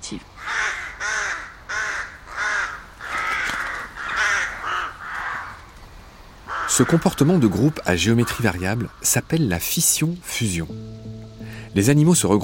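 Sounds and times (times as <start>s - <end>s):
speech: 0.1s - 0.4s, 6.8s - 11.1s, 11.7s - 12.4s
crows cawing: 0.4s - 5.7s, 6.4s - 9.1s.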